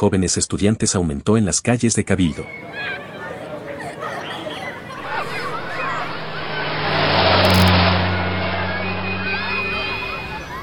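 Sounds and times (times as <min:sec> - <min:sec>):
speech: 0:00.0 - 0:03.1
steady noise: 0:02.4 - 0:10.6
vehicle speeding along a street in Cabildo: 0:05.0 - 0:10.6.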